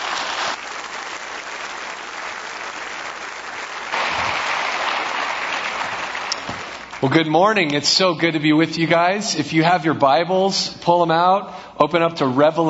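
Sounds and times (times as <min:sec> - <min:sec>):
church congregation applauding to welcome a guest pastor: 0:00.0 - 0:07.3
speech: 0:07.0 - 0:12.6.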